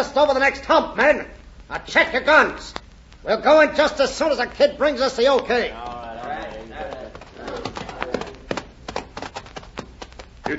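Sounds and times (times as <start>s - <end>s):
speech: 0.0s - 7.0s
horses' hooves clip-clopping: 4.6s - 10.5s.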